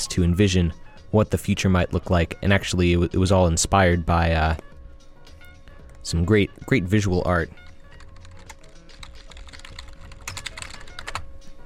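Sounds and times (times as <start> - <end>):
speech: 0.0 - 4.7, 6.0 - 7.6
typing on a computer keyboard: 8.0 - 11.2.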